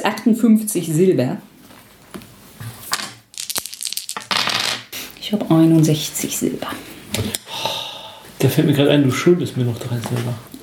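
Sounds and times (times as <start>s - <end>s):
speech: 0.0s - 1.5s, 5.3s - 7.4s, 8.4s - 10.6s
handful of dice rattling and clattering across a hard surface: 3.0s - 4.9s.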